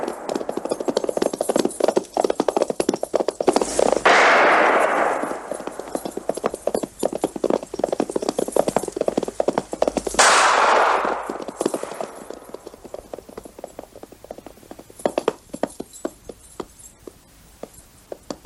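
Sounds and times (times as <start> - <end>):
sharp clopping hoofbeats: 0.0 - 18.4
single loud gunshot with tail: 4.0 - 5.7, 10.2 - 12.0.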